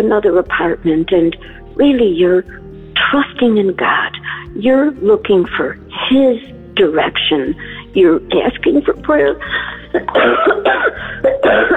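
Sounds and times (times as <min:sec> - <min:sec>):
speech: 0:00.0 - 0:11.7
person recovering from COVID coughing harshly: 0:10.0 - 0:11.7.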